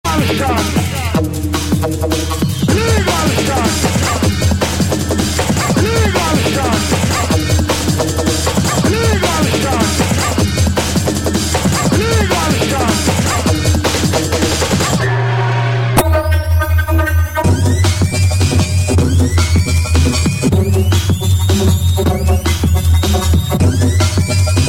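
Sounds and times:
drum and bass music: 0.0s - 24.6s.

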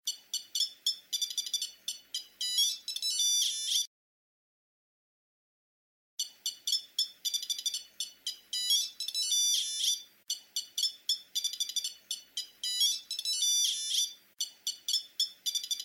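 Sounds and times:
Nokia 2100 ringtone: 0.1s - 3.9s, 6.2s - 15.8s.

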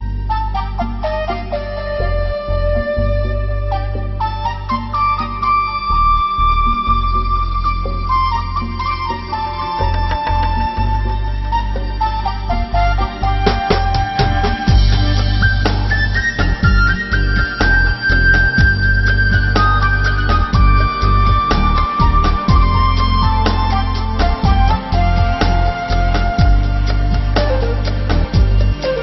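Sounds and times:
Gregorian flute: 0.0s - 29.0s.

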